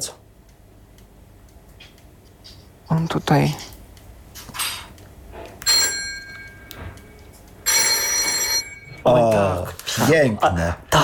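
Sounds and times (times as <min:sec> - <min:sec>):
speech: 0:03.0 - 0:03.7, 0:10.1 - 0:11.0
RWT Telkom Tulipan telephone bell ringing: 0:05.6 - 0:09.2.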